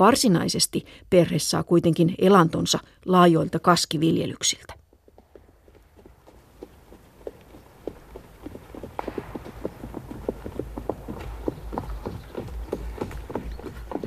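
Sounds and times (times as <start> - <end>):
speech: 0.0 - 4.8
horse hooves clip-clopping as riders approach: 3.6 - 14.0.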